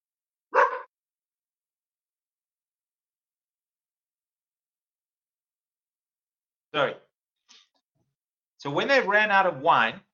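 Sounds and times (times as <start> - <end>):
pet dog barking: 0.5 - 1.0
speech: 6.8 - 7.0, 8.6 - 10.1.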